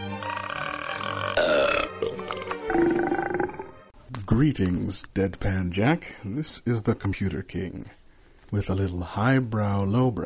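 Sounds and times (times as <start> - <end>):
long loud throaty burps: 0.0 - 3.8
speech: 4.3 - 10.2.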